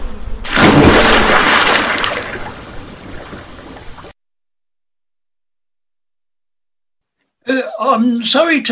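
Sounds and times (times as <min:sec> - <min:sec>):
churning, sloshing river water: 0:00.4 - 0:04.2
man pushed into a river splashing: 0:00.4 - 0:04.2
speech: 0:07.9 - 0:08.6.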